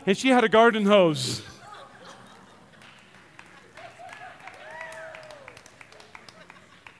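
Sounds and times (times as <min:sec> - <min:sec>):
speech: 0:00.0 - 0:01.6
laughter: 0:01.2 - 0:04.6, 0:05.9 - 0:06.9
audience clapping: 0:02.2 - 0:06.9
whoops and cheering voices: 0:03.8 - 0:06.1.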